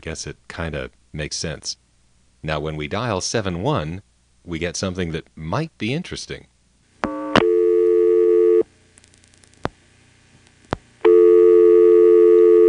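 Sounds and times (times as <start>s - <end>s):
speech: 0.0s - 1.8s, 2.4s - 6.5s
telephone dial tone on a post-pay coin phone line: 7.3s - 8.6s, 11.0s - 12.6s.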